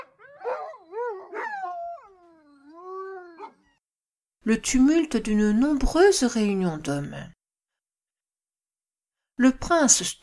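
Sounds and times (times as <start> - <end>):
dog giving loud drawn-out yelping howls: 0.0 - 3.8
speech: 4.4 - 7.4, 9.4 - 10.2.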